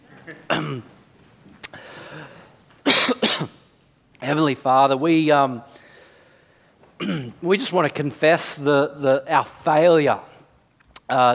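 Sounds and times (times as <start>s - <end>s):
throat clearing during a church sermon: 0.2s - 0.9s, 7.0s - 7.4s
sharp loud coughs during a church sermon: 0.3s - 0.9s, 2.0s - 3.7s, 7.0s - 7.4s
speech: 0.3s - 1.0s, 4.3s - 5.7s, 7.1s - 10.3s, 11.1s - 11.3s.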